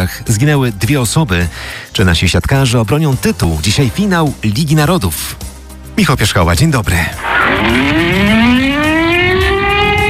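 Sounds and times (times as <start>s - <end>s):
speech: 0.0s - 8.8s
air raid sirens wailing over a city: 7.2s - 10.0s.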